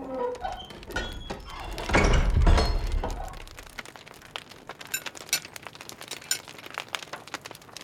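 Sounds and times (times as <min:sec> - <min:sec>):
scattered creaks and clicks: 0:00.0 - 0:07.8
heavy door thrown open at the end of a corridor: 0:00.9 - 0:03.7.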